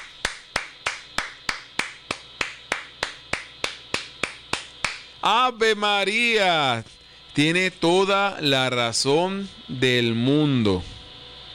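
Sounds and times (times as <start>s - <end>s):
sharp evenly spaced hand claps: 0.0s - 5.1s
speech: 5.2s - 11.0s.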